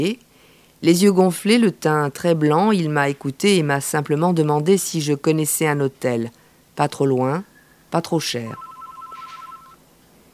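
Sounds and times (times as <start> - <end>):
speech: 0.0 - 8.6
telephone ringing with electronic trill: 8.5 - 9.8.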